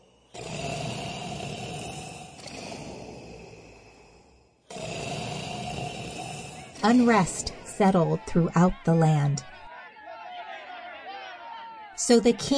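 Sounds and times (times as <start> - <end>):
loud rumbling snoring: 0.0 - 9.5
speech: 6.8 - 9.5, 12.1 - 12.5.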